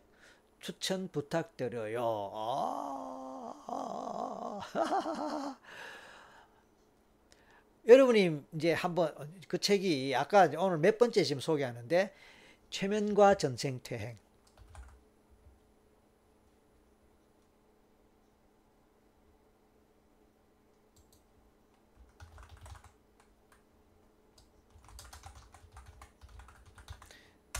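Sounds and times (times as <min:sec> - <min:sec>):
faint steady hum: 0:00.0 - 0:27.5
speech: 0:00.6 - 0:03.1, 0:04.6 - 0:06.0, 0:07.8 - 0:14.2
laughter: 0:03.8 - 0:05.6
keyboard typing a chat message: 0:14.4 - 0:15.0, 0:21.9 - 0:23.6, 0:24.3 - 0:27.5.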